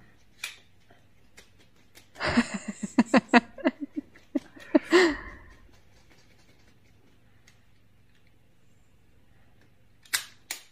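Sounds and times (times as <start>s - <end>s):
laughter: 2.2s - 5.6s
metallic clicks of an automatic rifle being assembled: 10.0s - 10.6s.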